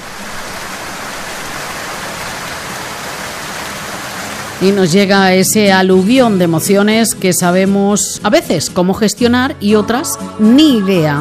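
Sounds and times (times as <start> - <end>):
steady rain: 0.0 - 5.6
speech: 4.6 - 11.2.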